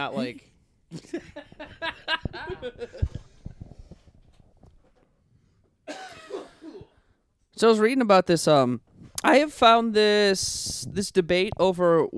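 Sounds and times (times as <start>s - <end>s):
speech: 0.0s - 3.3s, 7.6s - 12.1s
harsh coughing bursts: 5.9s - 7.1s.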